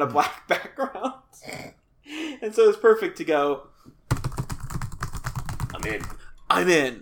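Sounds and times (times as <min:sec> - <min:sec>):
speech: 0:00.0 - 0:00.9, 0:02.4 - 0:03.7, 0:05.8 - 0:06.9
fingers typing quickly on a computer keyboard: 0:04.1 - 0:06.9.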